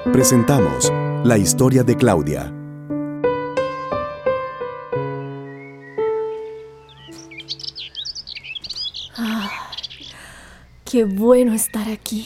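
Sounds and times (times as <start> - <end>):
speech: 0.1 - 2.5, 10.9 - 12.2
small birds chirping outdoors: 4.3 - 12.2.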